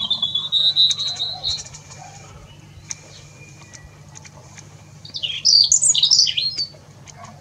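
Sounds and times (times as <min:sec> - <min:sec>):
bird singing with thin whistle and high chirps: 0:00.0 - 0:04.2, 0:04.8 - 0:06.8
low hum: 0:00.0 - 0:07.3.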